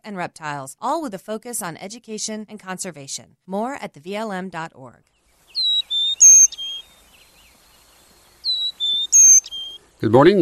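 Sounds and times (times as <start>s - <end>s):
speech: 0.0s - 5.1s, 10.0s - 10.4s
chickadee calling: 5.4s - 10.0s.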